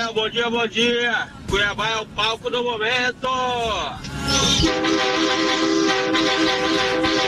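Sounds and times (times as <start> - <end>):
speech: 0.1 - 7.2
loud vehicle horn blaring with harsh multi-tone drone: 4.2 - 7.2.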